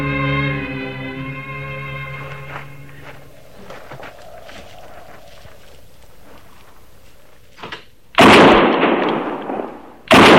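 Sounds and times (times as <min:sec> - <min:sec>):
gunshots while hunting an antelope: 0:08.2 - 0:10.3.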